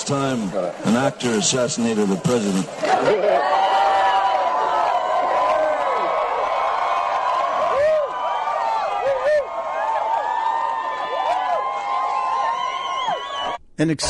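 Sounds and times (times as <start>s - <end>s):
large crowd cheering: 0.0s - 13.6s
speech: 0.1s - 3.8s, 13.8s - 14.0s
laughter: 0.4s - 3.9s
whoops and shouts from the crowd: 3.0s - 13.6s.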